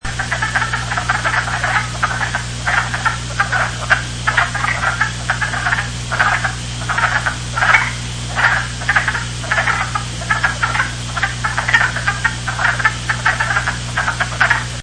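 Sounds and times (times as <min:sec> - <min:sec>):
wood frog calling: 0:00.0 - 0:14.8.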